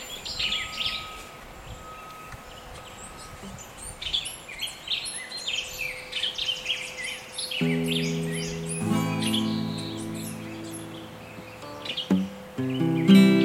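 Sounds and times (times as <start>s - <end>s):
forest ambience: 0.0s - 13.4s.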